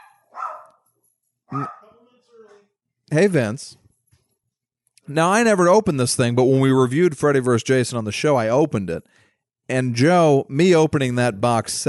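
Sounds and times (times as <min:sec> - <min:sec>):
dogs barking: 0:00.0 - 0:00.9, 0:01.5 - 0:02.0
speech: 0:01.5 - 0:01.8, 0:03.1 - 0:03.8, 0:05.1 - 0:11.8.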